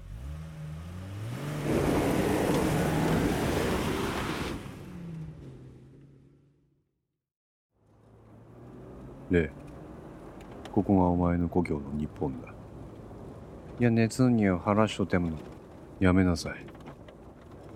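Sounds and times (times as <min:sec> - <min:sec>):
SUV engine starting, revving and driving off: 0:00.0 - 0:06.8, 0:07.8 - 0:10.9
speech: 0:09.3 - 0:09.6, 0:10.8 - 0:12.6, 0:13.8 - 0:16.7.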